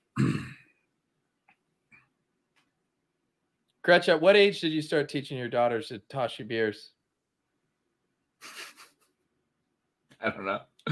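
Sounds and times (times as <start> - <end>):
short guttural burp: 0.0 - 0.8
speech: 3.9 - 7.0, 10.2 - 10.9.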